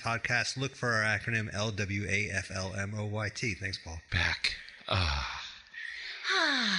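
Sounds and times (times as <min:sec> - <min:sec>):
speech: 0:00.0 - 0:05.4, 0:06.2 - 0:06.7
deep breathing while arching the back: 0:04.5 - 0:06.7
voiced moan-like sigh: 0:04.9 - 0:06.7.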